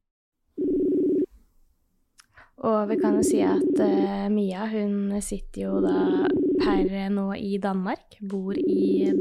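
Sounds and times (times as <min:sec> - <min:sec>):
telephone tone as a call is placed from Oslo to Denmark: 0:00.6 - 0:01.3, 0:02.9 - 0:04.1, 0:05.8 - 0:06.9, 0:08.6 - 0:09.1
speech: 0:02.6 - 0:09.1.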